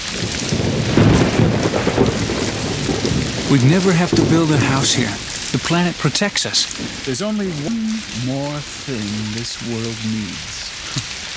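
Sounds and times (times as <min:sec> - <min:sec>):
deep thunder rumbling: 0:00.0 - 0:10.6
steady rain hissing: 0:00.0 - 0:11.3
speech: 0:03.5 - 0:11.0.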